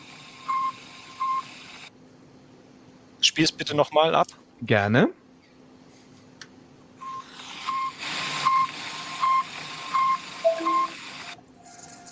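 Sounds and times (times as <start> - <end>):
speech: 3.2 - 5.2
truck reversing alarm beeps: 7.0 - 11.4.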